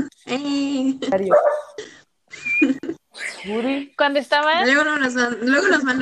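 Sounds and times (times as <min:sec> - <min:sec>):
speech: 0:00.0 - 0:01.8, 0:02.6 - 0:06.0
small dog barking: 0:01.2 - 0:01.8.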